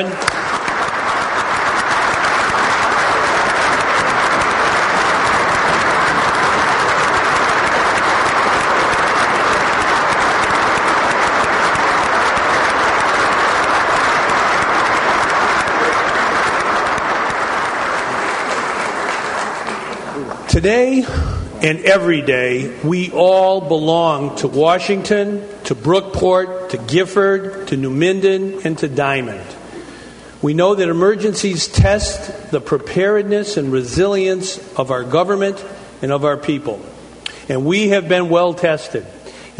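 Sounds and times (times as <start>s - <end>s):
speech: 0.0s - 0.3s, 20.6s - 29.6s, 30.4s - 39.5s
large audience applauding: 0.0s - 22.3s.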